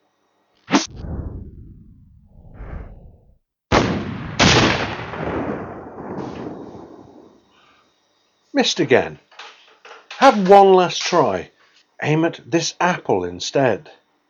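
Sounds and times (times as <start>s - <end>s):
arrows fired in a video game: 0.7s - 5.4s
breeze block exploding in a video game: 0.7s - 6.8s
speech: 8.6s - 9.3s, 10.2s - 14.0s.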